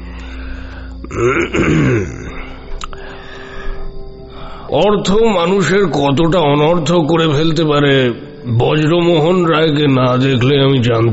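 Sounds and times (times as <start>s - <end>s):
speech: 1.1s - 2.3s, 4.7s - 11.1s
man smoking a hookah clearing his throat: 1.1s - 2.6s.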